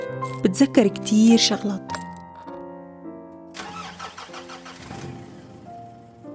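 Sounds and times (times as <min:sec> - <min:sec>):
speech: 0:00.1 - 0:02.0
car engine cranking with whirring starter and idling: 0:03.5 - 0:06.3.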